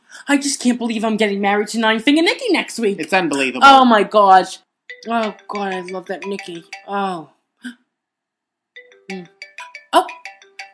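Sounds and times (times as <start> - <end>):
speech: 0.3 - 7.8, 9.1 - 10.2
mobile phone ringing with a bright electronic ringtone: 4.9 - 7.2, 8.8 - 10.7.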